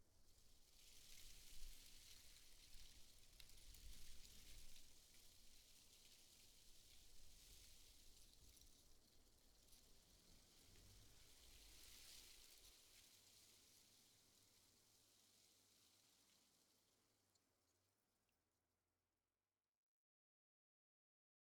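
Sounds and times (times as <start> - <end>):
leaves: 0.1 - 17.4.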